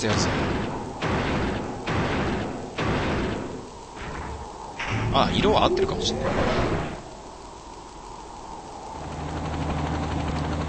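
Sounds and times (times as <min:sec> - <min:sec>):
speech: 0:00.0 - 0:00.5, 0:05.2 - 0:06.9
helicopter rotor thrum in video game: 0:00.0 - 0:05.1, 0:09.0 - 0:10.6
steady broadband noise: 0:00.0 - 0:10.6.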